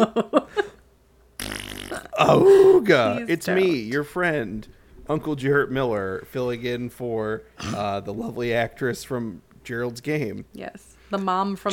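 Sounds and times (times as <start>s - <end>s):
speech: 0.0s - 0.6s, 2.2s - 11.7s
loud buzzy fart bursts: 1.4s - 2.2s.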